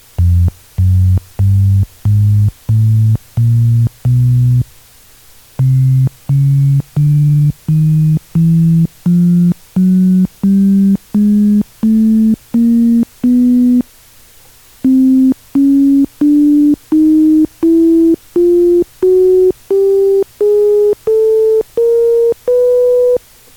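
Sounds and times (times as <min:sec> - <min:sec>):
Hammond tonewheel organ tones: 0:00.2 - 0:04.6, 0:05.6 - 0:13.8, 0:14.8 - 0:23.2.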